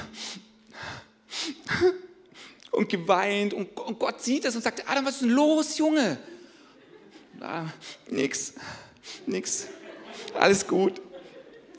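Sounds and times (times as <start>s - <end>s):
voice imitating sniffling: 0.0s - 2.6s, 7.1s - 8.1s
speech: 2.8s - 6.4s, 7.4s - 11.1s
laughter: 6.0s - 11.7s.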